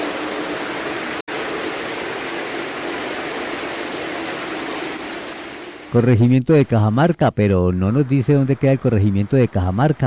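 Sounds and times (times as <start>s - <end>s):
steady rain falling: 0.0s - 7.0s
speech: 5.9s - 10.0s.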